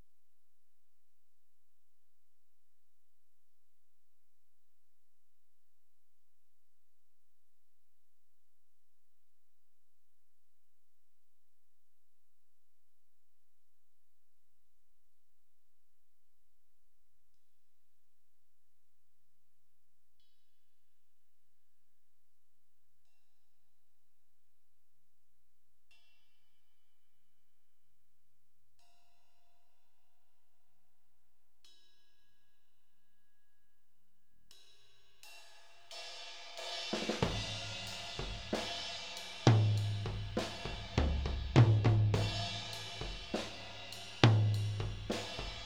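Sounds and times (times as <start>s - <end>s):
tom drums in a drum mix: 36.9s - 45.6s.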